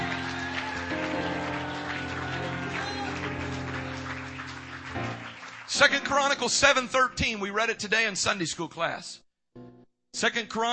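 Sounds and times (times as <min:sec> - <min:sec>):
audience clapping in a large room: 0:00.0 - 0:06.9
speech: 0:05.8 - 0:09.2, 0:10.2 - 0:10.7.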